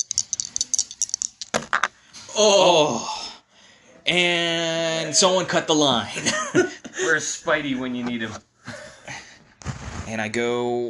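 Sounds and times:
two dice rattling and clattering: 0.0 - 1.9
speech: 2.4 - 3.2, 4.1 - 8.5, 10.1 - 10.8.

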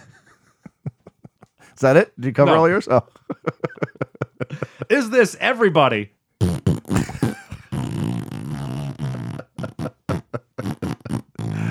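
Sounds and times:
speech: 1.8 - 3.6, 5.0 - 6.2
laughter: 3.2 - 4.9
person making buzzing mouth imitation of farting: 6.4 - 11.6.

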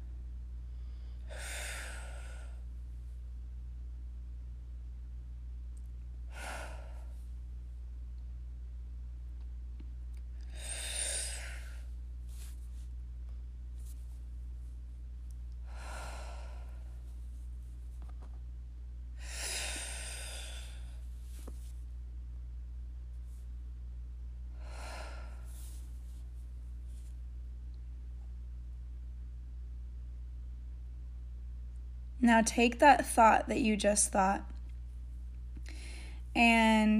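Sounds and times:
steady low hum: 0.0 - 36.9
slow deep breaths filling the lungs: 0.7 - 2.7, 6.3 - 7.3, 10.4 - 12.6, 15.6 - 17.2, 19.2 - 21.6, 24.5 - 25.9, 35.6 - 36.3
speech: 32.2 - 34.5, 36.4 - 36.9.

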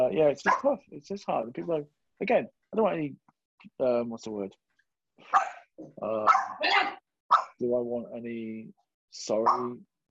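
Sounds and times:
speech: 0.2 - 4.6, 5.2 - 10.0
dog barking sharply: 0.4 - 0.7, 5.3 - 6.7, 7.3 - 7.6, 9.4 - 9.8.

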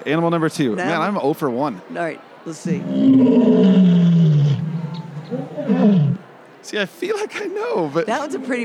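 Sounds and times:
speech: 0.0 - 4.2, 5.3 - 8.6
lion roaring: 2.8 - 6.2
lion's rumbling grunts: 2.8 - 6.3.

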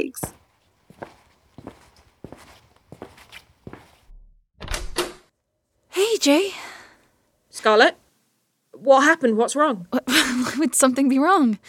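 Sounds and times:
speech: 0.0 - 0.4, 6.1 - 6.7, 7.6 - 8.0, 8.8 - 11.6
footsteps: 0.0 - 4.1.

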